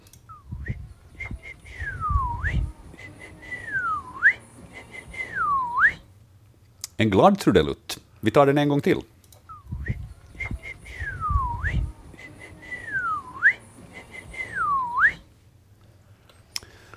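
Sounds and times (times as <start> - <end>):
person whistling an imitation of a bird call heard in Västanfjärd: 0.3 - 6.0, 9.5 - 15.2
low rumble: 0.3 - 6.3, 9.5 - 15.7
speech: 7.0 - 9.1.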